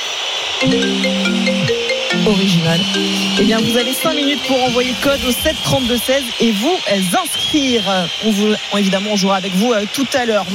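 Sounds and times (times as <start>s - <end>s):
short electronic phone ringtone jingle: 0.6s - 6.2s
speech: 0.6s - 10.5s.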